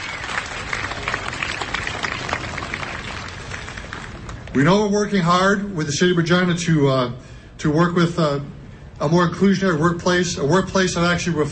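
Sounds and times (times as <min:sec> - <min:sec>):
crowd applauding: 0:00.0 - 0:04.5
speech: 0:04.5 - 0:11.4.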